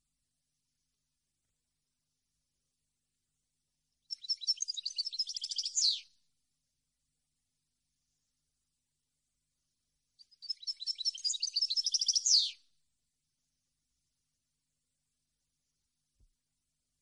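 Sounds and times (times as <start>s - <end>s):
European goldfinch twittering song: 4.0s - 6.1s, 10.2s - 12.6s.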